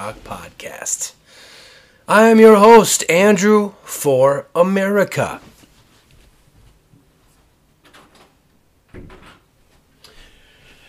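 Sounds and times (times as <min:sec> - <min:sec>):
speech: 0:00.0 - 0:01.5, 0:02.1 - 0:05.5
faint rustling: 0:05.4 - 0:08.4
door pushed shut with a dull thud: 0:07.8 - 0:09.5.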